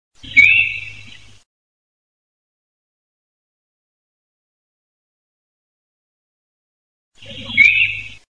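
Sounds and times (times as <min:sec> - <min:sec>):
sika deer alarm call: 0:00.3 - 0:01.2, 0:07.2 - 0:08.2.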